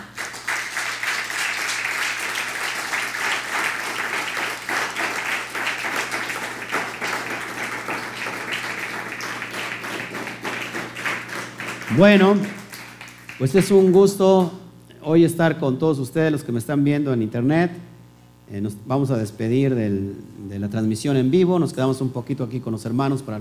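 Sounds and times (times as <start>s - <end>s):
crowd applause at a religious gathering: 0.0s - 14.1s
speech: 12.0s - 12.6s, 13.4s - 17.9s, 18.5s - 23.3s.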